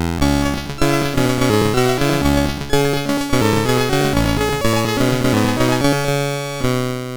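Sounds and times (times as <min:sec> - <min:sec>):
intro music on a MOS 6581R2 sound chip: 0:00.2 - 0:07.0.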